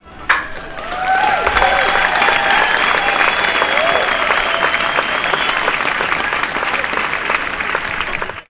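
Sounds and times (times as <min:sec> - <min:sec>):
crowd cheering: 0:00.0 - 0:08.4.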